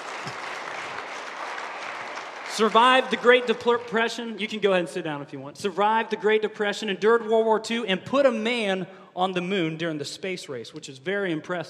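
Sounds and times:
audience applause: 0.0s - 4.0s
speech: 2.6s - 11.6s.

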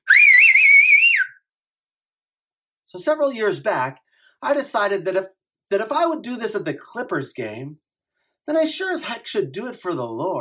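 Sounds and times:
loud piercing human whistle: 0.0s - 1.4s
speech: 2.9s - 7.8s, 8.5s - 10.3s.

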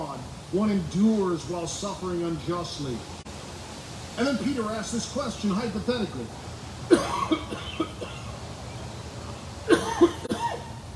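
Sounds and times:
speech: 0.5s - 3.2s, 4.2s - 7.4s
man coughing dry coughs into a microphone: 6.9s - 8.4s, 9.7s - 10.7s.

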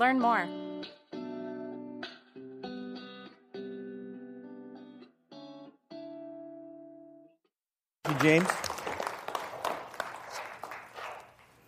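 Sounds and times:
speech: 0.0s - 0.6s, 8.2s - 8.7s
thin applause from a modest crowd: 8.0s - 11.6s.

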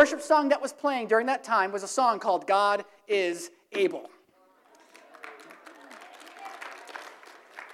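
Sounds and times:
speech: 0.0s - 4.2s
room full of people applauding: 4.6s - 7.7s.

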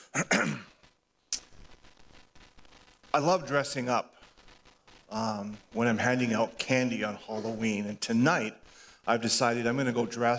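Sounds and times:
person clearing their throat: 0.0s - 0.8s
faint low noise: 0.0s - 10.3s
speech: 3.1s - 4.2s, 5.1s - 10.3s.

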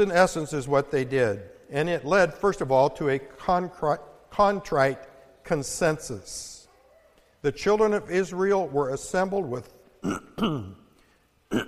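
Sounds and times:
speech: 0.0s - 6.6s, 7.4s - 10.8s
rough cough from a lingering illness: 10.0s - 10.8s
raspy throat clearing from a lingering illness: 10.0s - 11.6s.

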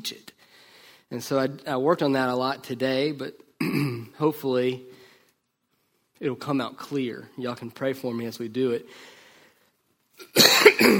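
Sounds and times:
faint breath: 0.4s - 1.1s, 4.9s - 6.0s, 8.9s - 9.8s
speech: 1.1s - 4.9s, 6.2s - 9.2s, 10.2s - 10.9s
person coughing from allergies: 3.6s - 4.1s, 10.2s - 10.9s.

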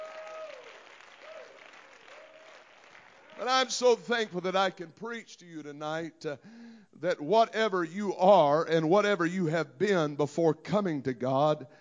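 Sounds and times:
audience clapping hands: 0.0s - 4.3s
speech: 3.4s - 11.7s.

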